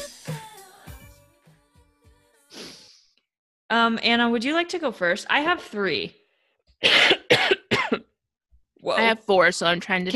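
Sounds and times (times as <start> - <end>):
speech: 3.8 - 6.2, 6.8 - 7.3, 8.8 - 10.1
harsh raspy phlegmy coughs: 6.8 - 8.2.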